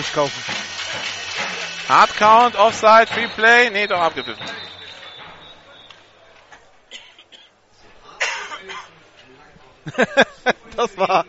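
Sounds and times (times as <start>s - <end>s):
speech: 0.0s - 1.1s, 1.9s - 4.6s, 9.8s - 11.2s
stadium sound man coughing at an American football game: 8.1s - 8.9s
laughter: 9.8s - 11.2s.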